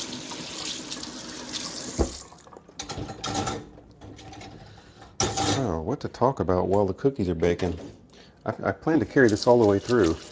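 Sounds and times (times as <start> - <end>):
tap water running while dishes are rinsed: 0.0 - 3.0, 8.9 - 10.3
dishes clattering and splashing: 2.0 - 5.7
dishes clinking: 2.8 - 5.7
speech: 5.6 - 10.3.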